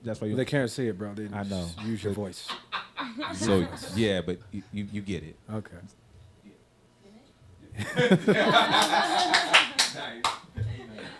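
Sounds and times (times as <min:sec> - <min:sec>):
speech: 0:00.0 - 0:06.0, 0:07.8 - 0:10.4
lively laughter: 0:02.5 - 0:04.1, 0:07.8 - 0:09.8, 0:10.6 - 0:11.1
sharp hand claps: 0:08.7 - 0:10.5.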